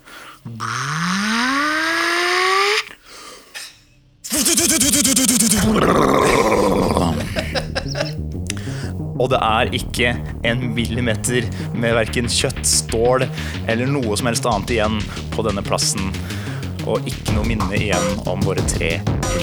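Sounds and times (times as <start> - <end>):
harsh buzzing mechanical roar of rocket launchers: 0.5 - 2.8
rocket launchers on cars charging up with rising whining tone: 0.5 - 2.9
laughter: 4.3 - 8.2
speech: 9.4 - 19.4.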